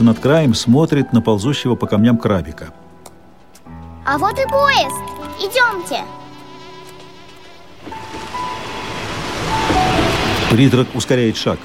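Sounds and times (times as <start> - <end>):
speech: 0.0 - 2.8, 4.1 - 6.2, 10.5 - 11.6
ocean waves washing over: 5.3 - 11.6.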